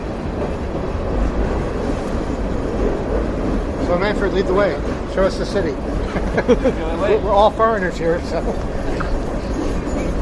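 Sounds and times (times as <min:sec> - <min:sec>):
freight train rumbling overhead in Winnipeg on a chilly day: 0:00.0 - 0:10.2
speech: 0:03.9 - 0:08.7
laughter: 0:05.8 - 0:07.4, 0:08.2 - 0:09.2.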